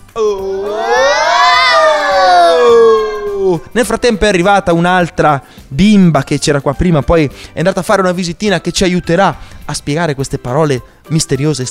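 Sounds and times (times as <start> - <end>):
crowd of children roaring and cheering: 0.3 - 3.6
speech: 3.7 - 11.6.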